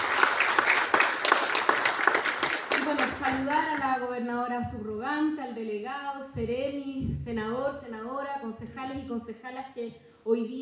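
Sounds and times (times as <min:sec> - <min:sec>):
audience applause at an official ceremony: 0:00.0 - 0:03.8
speech: 0:02.9 - 0:10.6.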